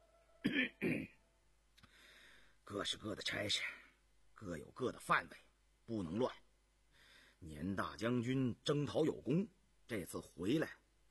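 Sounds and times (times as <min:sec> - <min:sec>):
man clearing throat with coughs: 0:00.4 - 0:01.2
speech: 0:00.5 - 0:01.1, 0:02.7 - 0:03.8, 0:04.4 - 0:06.4, 0:07.4 - 0:11.1.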